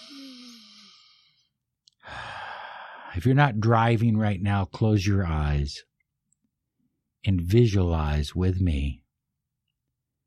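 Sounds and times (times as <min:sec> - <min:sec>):
deep breath drawn in slowly: 0:00.0 - 0:03.2
speech: 0:03.2 - 0:05.9, 0:07.2 - 0:09.0.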